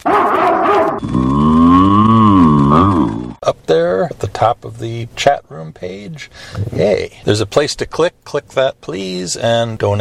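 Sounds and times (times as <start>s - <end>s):
cow mooing: 0.1s - 3.4s
speech: 3.7s - 9.9s.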